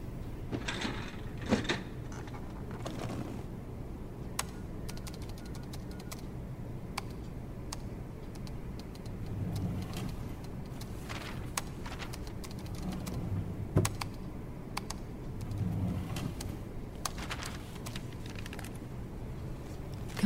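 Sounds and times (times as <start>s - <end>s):
low hum: 0.0s - 20.2s
metal filing cabinet drawer sliding open with a rough scrape: 0.5s - 3.5s.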